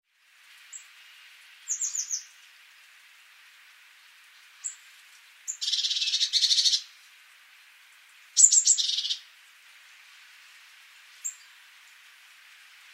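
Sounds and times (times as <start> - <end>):
light background hiss: 0.1 - 12.9
Eurasian blue tit Cyanistes caeruleus calls: 1.7 - 2.3, 5.5 - 6.9, 8.4 - 9.3.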